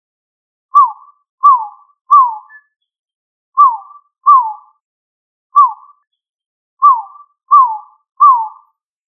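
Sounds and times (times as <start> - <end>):
pigeon whistled calls: 0.7 - 2.8, 3.6 - 4.8, 5.6 - 6.1, 6.8 - 8.9.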